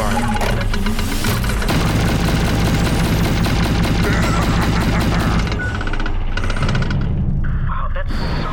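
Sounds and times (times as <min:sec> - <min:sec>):
booming impacts: 0:00.4 - 0:07.6
video game heavy weapons gunfire: 0:00.7 - 0:07.3.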